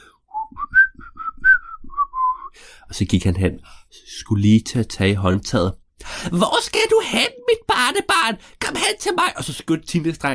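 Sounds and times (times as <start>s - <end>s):
boy whistling a calm tune while walking: 0.3s - 2.6s
speech: 2.9s - 10.3s.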